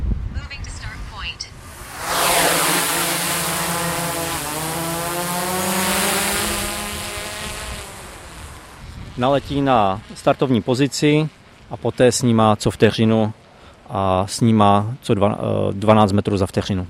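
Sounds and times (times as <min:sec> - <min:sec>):
drone rotors spinning up as it takes off: 0:00.5 - 0:13.8
speech: 0:09.2 - 0:16.8.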